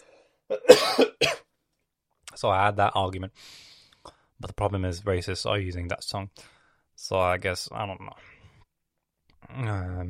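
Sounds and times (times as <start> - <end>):
person coughing from a peanut stuck in the throat: 0.5 - 1.5
speech: 2.4 - 3.7, 4.4 - 8.3, 9.4 - 10.0.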